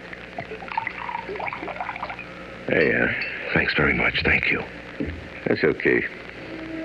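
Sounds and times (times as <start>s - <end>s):
water poured into a glass of scotch at a bar: 0.4s - 2.3s
speech: 0.4s - 6.3s.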